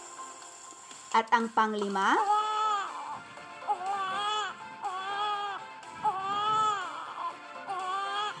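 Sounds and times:
speech: 1.2 - 2.4
baby crying: 2.2 - 8.3.

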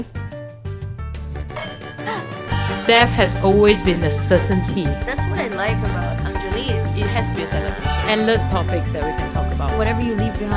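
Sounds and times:
glasses clinking together in a toast: 1.5 - 3.6
speech: 2.9 - 10.5.

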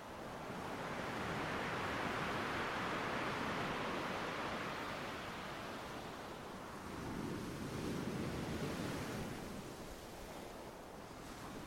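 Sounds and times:
ocean waves rolling in: 0.0 - 11.6.

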